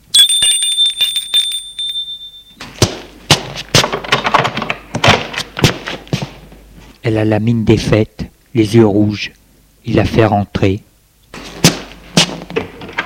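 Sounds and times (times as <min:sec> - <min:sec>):
doorbell ringing: 0:00.1 - 0:02.6
thumps and knocking clatters: 0:00.4 - 0:06.4
speech: 0:07.1 - 0:10.9.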